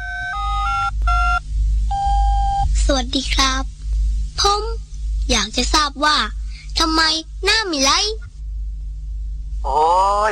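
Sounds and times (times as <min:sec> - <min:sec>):
electronic telephone ring tones on a call to the city waterworks: 0:00.0 - 0:01.4
low steady hum: 0:00.0 - 0:10.3
speech: 0:02.9 - 0:03.8, 0:04.4 - 0:08.2, 0:09.6 - 0:10.3.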